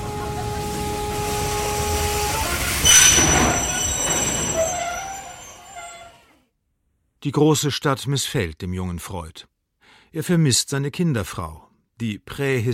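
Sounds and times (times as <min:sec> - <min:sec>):
train rumbling on rails: 0:00.0 - 0:06.2
high metallic train wheel squeals: 0:01.0 - 0:06.4
speech: 0:07.2 - 0:09.5, 0:10.1 - 0:12.7.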